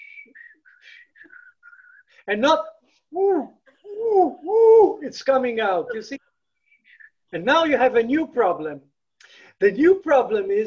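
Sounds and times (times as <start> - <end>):
person whistling a short lilting tune while going to the toilet: 0.0 - 2.2
speech: 2.3 - 6.2, 7.3 - 8.9, 9.6 - 10.6.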